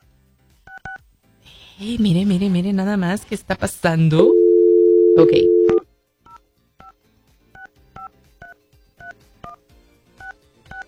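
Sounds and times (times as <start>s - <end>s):
speech: 1.8s - 4.4s, 5.2s - 5.6s
telephone keypad dialing tones: 4.4s - 5.8s.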